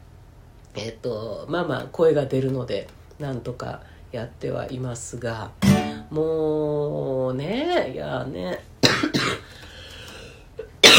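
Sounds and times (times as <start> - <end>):
speech: 0.8 - 9.4
person coughing: 8.8 - 9.5, 10.6 - 10.9.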